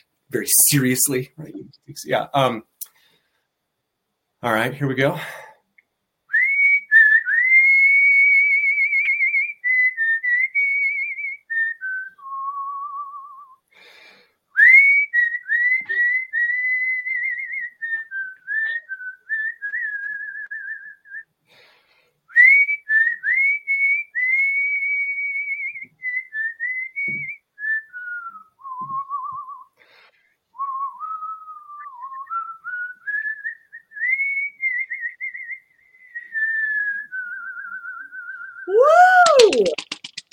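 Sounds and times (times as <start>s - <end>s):
speech: 0.3s - 2.7s, 4.4s - 5.5s
person whistling a melody: 6.3s - 13.6s, 14.6s - 21.3s, 22.3s - 29.8s, 30.6s - 39.9s.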